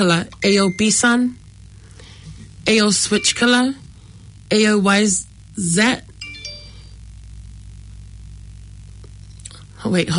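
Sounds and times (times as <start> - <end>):
speech: 0.0 - 1.4, 2.6 - 3.8, 4.5 - 6.1, 9.8 - 10.1
low hum: 0.0 - 10.1
phone message notification ding: 3.1 - 3.8, 6.2 - 6.9.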